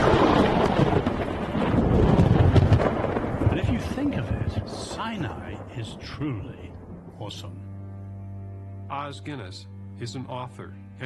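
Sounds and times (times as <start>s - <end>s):
rain-like hiss: 0.0s - 7.5s
thunder rumbling: 0.0s - 7.9s
speech: 6.2s - 7.7s, 8.9s - 11.0s.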